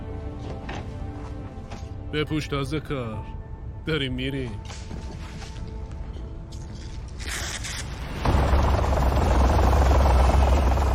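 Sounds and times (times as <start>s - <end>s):
speech: 2.1s - 4.8s
helicopter rotor thump and engine drone: 8.2s - 10.9s.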